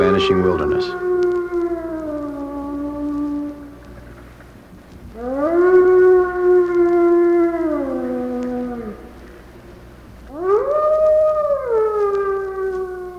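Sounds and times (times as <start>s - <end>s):
wild wolves howling: 0.0s - 13.1s
speech: 0.2s - 1.1s.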